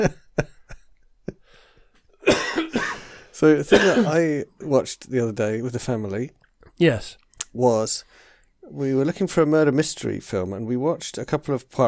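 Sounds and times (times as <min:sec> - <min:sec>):
speech: 0:00.0 - 0:00.5, 0:03.4 - 0:11.8
person coughing: 0:02.2 - 0:03.1, 0:03.7 - 0:04.2.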